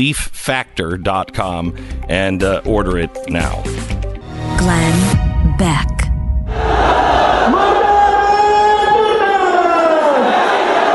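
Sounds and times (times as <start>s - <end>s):
speech: 0.0s - 4.0s, 4.6s - 6.0s
angry mob in Pakistan shouting in unison: 6.5s - 10.9s.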